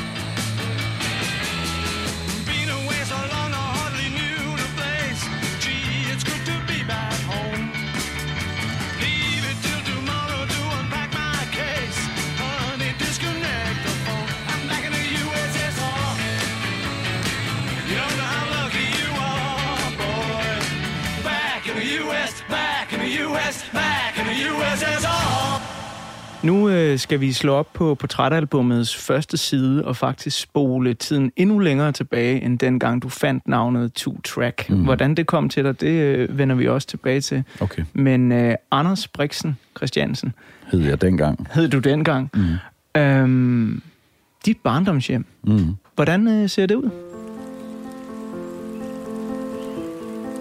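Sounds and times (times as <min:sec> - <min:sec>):
rock song with pounding beat, bass, guitars and vocals: 0:00.0 - 0:28.0
speech: 0:26.4 - 0:47.0.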